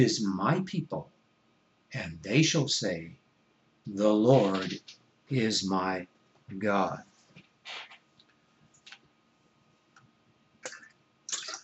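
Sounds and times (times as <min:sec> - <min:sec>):
speech: 0:00.0 - 0:01.1, 0:01.9 - 0:03.2, 0:03.9 - 0:07.1, 0:07.7 - 0:07.9
person sipping water: 0:10.6 - 0:11.6
swallowing: 0:10.6 - 0:11.6
slurping: 0:10.7 - 0:11.6.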